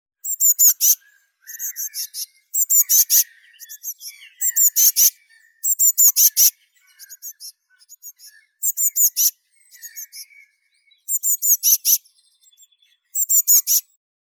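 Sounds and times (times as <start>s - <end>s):
big Cyanistes caeruleus blue tit chick calling: 0.2s - 14.0s.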